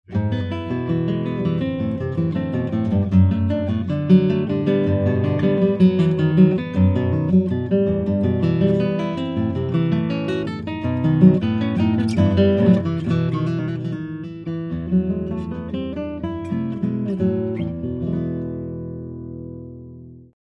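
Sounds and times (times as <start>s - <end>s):
spruce guitars: 0.1s - 20.3s.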